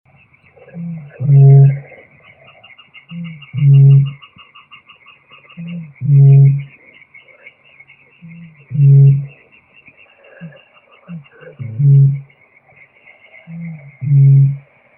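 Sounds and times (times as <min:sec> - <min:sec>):
great bittern Botaurus stellaris: 0:00.7 - 0:01.9, 0:03.1 - 0:04.2, 0:05.6 - 0:06.7, 0:08.2 - 0:09.4, 0:11.6 - 0:12.3, 0:13.5 - 0:14.6.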